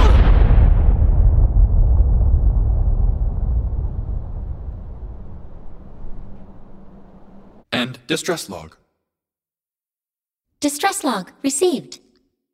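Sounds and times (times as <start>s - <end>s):
explosive charges detonating: 0.0s - 7.0s
speech: 8.1s - 8.8s, 10.6s - 12.0s.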